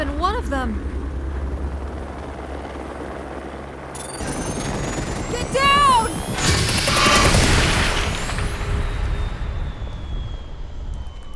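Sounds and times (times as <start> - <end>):
police helicopter rotor and engine: 0.0 - 11.3
speech: 0.4 - 1.0.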